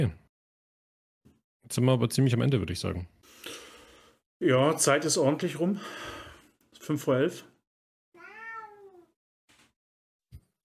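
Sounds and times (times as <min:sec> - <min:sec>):
speech: 0:00.0 - 0:00.2, 0:01.7 - 0:03.6, 0:04.4 - 0:06.2, 0:06.8 - 0:07.5
male cat meowing: 0:08.2 - 0:09.2.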